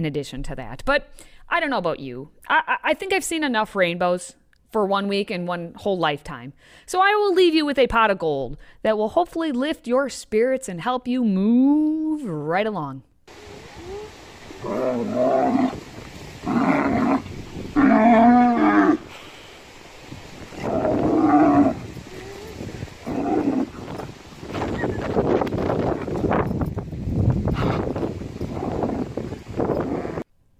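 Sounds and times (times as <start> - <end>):
speech: 0.0 - 13.5, 14.6 - 15.8
wind noise: 13.3 - 30.3
cow mooing while playing fetch with a ball: 13.7 - 19.1, 20.6 - 24.0.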